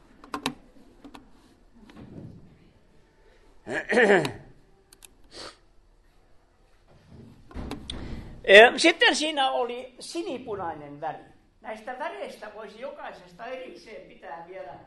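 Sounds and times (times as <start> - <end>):
speech: 3.7 - 4.4, 8.5 - 14.8
door swinging shut with a creaking, rattling thud: 7.1 - 8.4.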